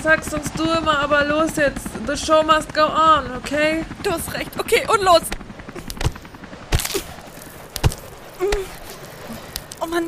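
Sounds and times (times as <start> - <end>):
speech: 0.0 - 5.4, 9.9 - 10.0
climbers' ice axes striking a high frozen wall: 5.8 - 10.0.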